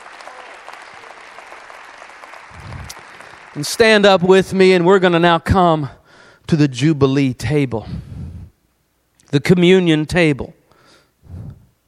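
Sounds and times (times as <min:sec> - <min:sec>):
large audience clapping hands in praise: 0:00.0 - 0:05.1
speech: 0:03.6 - 0:08.1, 0:09.3 - 0:10.6.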